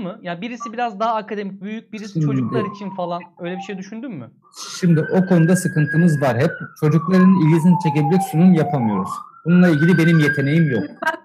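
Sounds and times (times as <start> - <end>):
speech: 0.0 - 11.2
ambulance siren passing outside: 2.0 - 11.0.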